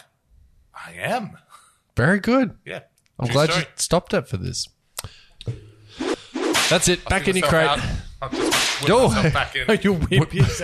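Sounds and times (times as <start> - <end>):
speech: 0.9 - 5.6, 6.7 - 10.6
person vocally imitating a reversed whip crack: 6.0 - 6.8, 8.3 - 8.9
laughter: 8.9 - 10.6.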